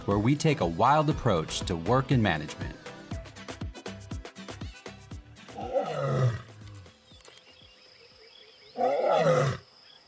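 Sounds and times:
speech: 0:00.0 - 0:02.8
lion roaring: 0:05.5 - 0:06.5, 0:08.8 - 0:09.6.

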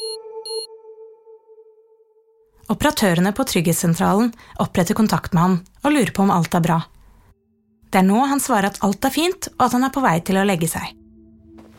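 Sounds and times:
short high beeps from a personal safety alarm: 0:00.0 - 0:00.7
personal safety alarm worn on the arm set off by mistake in an apartment: 0:00.0 - 0:01.1
speech: 0:02.7 - 0:06.9, 0:07.9 - 0:11.0.

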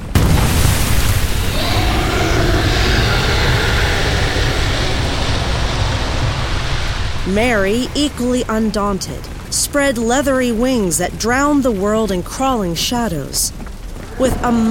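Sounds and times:
loud explosive blast: 0:00.0 - 0:08.6
deep continuous roar of gray flame: 0:00.1 - 0:09.9
speech: 0:07.3 - 0:13.6, 0:14.2 - 0:14.6.

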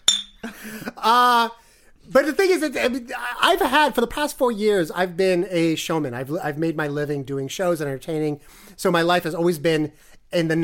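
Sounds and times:
glasses clinking in a toast: 0:00.0 - 0:00.5
speech: 0:00.6 - 0:10.6.

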